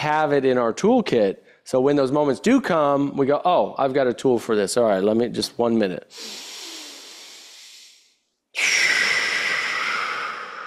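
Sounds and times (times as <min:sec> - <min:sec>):
speech: 0:00.0 - 0:06.5
deep breath: 0:06.1 - 0:10.6.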